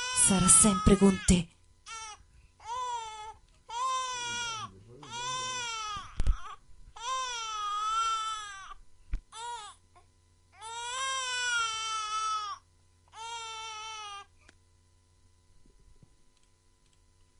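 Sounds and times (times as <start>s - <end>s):
baby wailing: 0.0s - 9.8s, 10.6s - 14.3s
speech: 0.3s - 1.5s.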